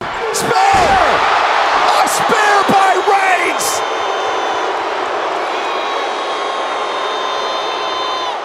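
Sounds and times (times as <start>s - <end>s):
large arena crowd booing: 0.0s - 8.4s.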